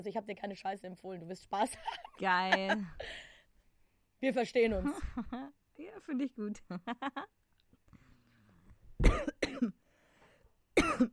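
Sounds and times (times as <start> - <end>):
speech: 0.0 - 3.3, 4.2 - 7.4, 9.0 - 9.8, 11.0 - 11.1
laughter: 1.7 - 3.1
loud harsh coughs: 9.0 - 9.8, 10.8 - 11.1.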